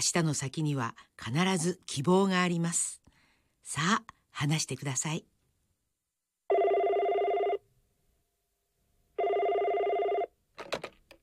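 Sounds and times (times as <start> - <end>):
speech: 0.0 - 3.0, 3.7 - 5.3
telephone ringing: 6.5 - 7.6, 9.2 - 10.4.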